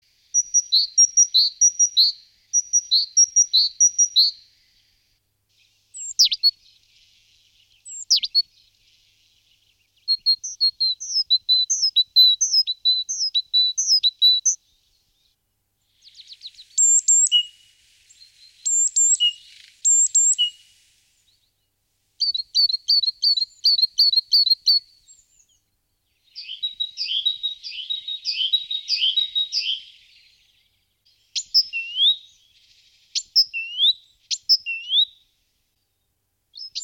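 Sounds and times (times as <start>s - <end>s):
great tit birds: 0.2s - 21.5s, 22.2s - 35.3s.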